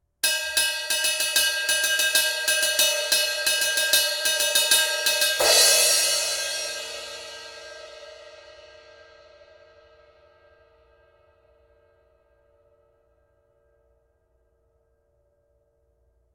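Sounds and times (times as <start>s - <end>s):
crash ride cymbal: 0.4s - 9.2s.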